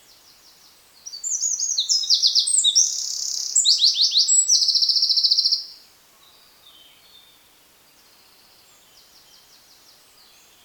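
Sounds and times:
Eurasian wren Troglodytes troglodytes singing rapid trills: 0:01.0 - 0:05.7.

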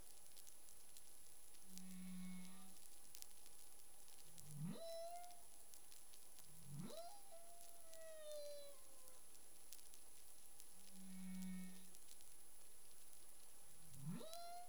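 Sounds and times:
crackling underwater noise in the Caribbean: 0:00.0 - 0:14.6
humpback whale singing in the Caribbean: 0:04.6 - 0:05.5, 0:06.6 - 0:09.2.

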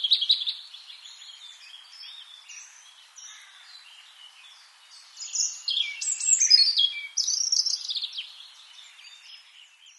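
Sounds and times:
European robin Erithacus rubecula song: 0:00.0 - 0:09.9.

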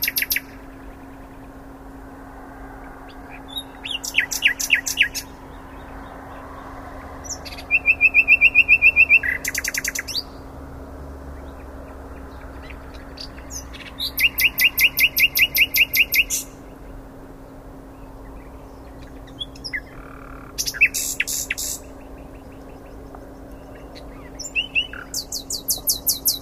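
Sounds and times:
common nightingale Luscinia megarhynchos singing: 0:00.0 - 0:01.9, 0:02.8 - 0:10.5, 0:11.3 - 0:26.4
constant low hum: 0:00.0 - 0:26.4.

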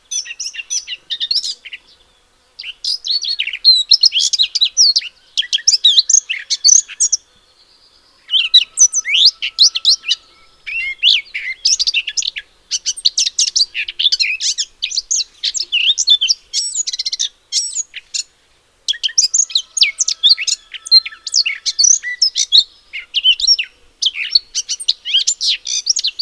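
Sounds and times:
Eurasian blackcap song: 0:00.0 - 0:02.0, 0:02.6 - 0:07.3, 0:08.2 - 0:18.3, 0:18.9 - 0:26.2
faint steady tone: 0:00.0 - 0:20.0.

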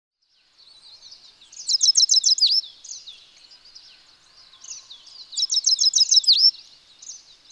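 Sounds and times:
Carduelis carduelis European goldfinch twittering: 0:01.5 - 0:03.0, 0:04.6 - 0:06.6.

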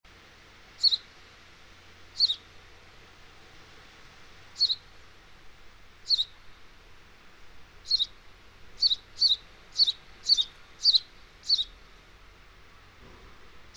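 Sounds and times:
house sparrow Passer domesticus chirping: 0:00.6 - 0:01.1, 0:02.0 - 0:02.5, 0:03.5 - 0:04.9, 0:05.6 - 0:06.6, 0:07.4 - 0:11.8, 0:13.5 - 0:13.7.

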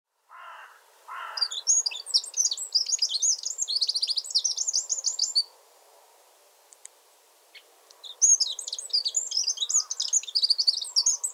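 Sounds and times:
Eurasian wren Troglodytes troglodytes song with fast trills: 0:01.2 - 0:05.5, 0:07.5 - 0:11.3.

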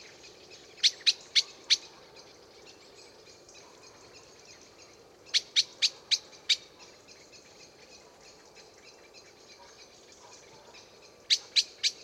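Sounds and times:
Eurasian blackbird Turdus merula giving dry chink calls: 0:00.0 - 0:12.0
light background noise: 0:00.0 - 0:12.0.

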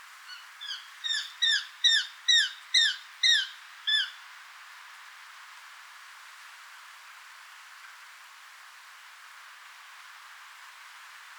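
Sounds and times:
Eurasian jay Garrulus glandarius calling: 0:00.3 - 0:04.1.

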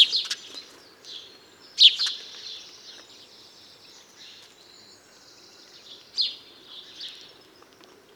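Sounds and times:
house sparrow Passer domesticus chirps: 0:01.8 - 0:02.7.

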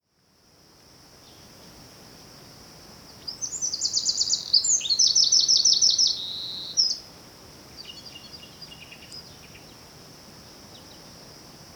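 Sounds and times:
constant hiss: 0:00.1 - 0:11.7
Eurasian wren Troglodytes troglodytes singing rapid trills: 0:03.1 - 0:07.0, 0:07.7 - 0:09.8.

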